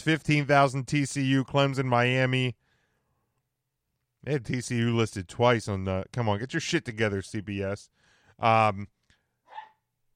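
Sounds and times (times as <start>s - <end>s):
speech: 0.0s - 2.6s, 4.2s - 9.0s
dog barking: 9.5s - 9.8s.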